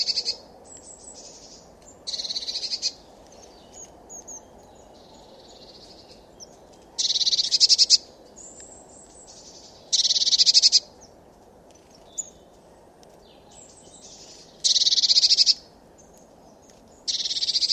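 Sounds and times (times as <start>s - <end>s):
Eurasian blue tit buzzy churring rattles: 7.0s - 8.0s, 10.0s - 10.8s, 14.6s - 15.6s, 17.1s - 17.7s.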